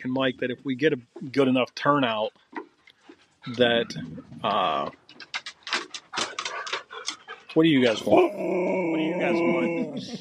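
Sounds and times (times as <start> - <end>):
speech: 0.0 - 2.5, 3.4 - 5.3, 7.6 - 10.2
husky dogs panting: 2.4 - 8.1
laughter: 3.5 - 4.9, 7.6 - 10.2.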